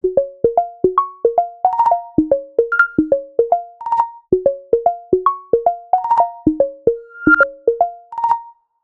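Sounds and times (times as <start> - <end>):
Samsung Galaxy A56 ringtone: 0.0 - 8.6.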